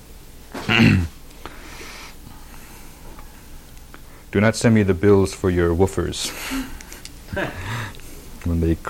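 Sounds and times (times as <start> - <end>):
loud rough throaty cough: 0.6 - 1.1
speech: 0.7 - 1.2, 4.3 - 8.8.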